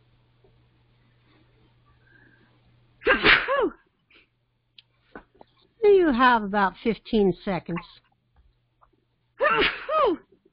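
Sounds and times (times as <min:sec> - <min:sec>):
person sneezing: 0:03.0 - 0:03.8, 0:09.4 - 0:10.3
speech: 0:06.0 - 0:08.0.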